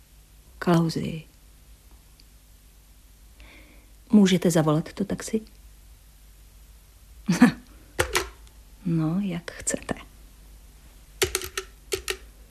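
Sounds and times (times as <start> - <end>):
speech: 0.6 - 1.3, 4.1 - 5.6, 7.3 - 7.5, 8.9 - 9.9
sharp mechanical clicks of a telephone being dialed on a dead line: 11.2 - 12.2.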